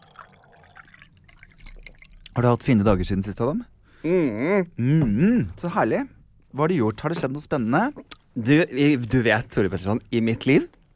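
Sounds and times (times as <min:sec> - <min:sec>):
water poured into a small cup: 0:00.0 - 0:02.7
speech: 0:02.4 - 0:10.8.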